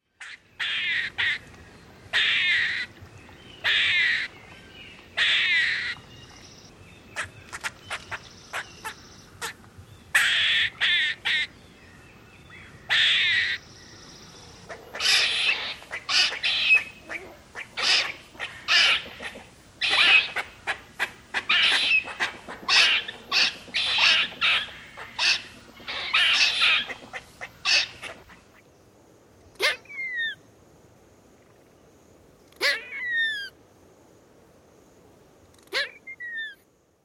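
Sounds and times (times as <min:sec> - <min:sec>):
gray squirrel calls: 0:00.2 - 0:01.5, 0:02.1 - 0:02.9, 0:03.6 - 0:04.3, 0:05.2 - 0:06.1, 0:07.2 - 0:11.5, 0:12.9 - 0:13.7, 0:14.6 - 0:28.4, 0:29.6 - 0:30.4, 0:32.6 - 0:33.6, 0:35.6 - 0:36.6.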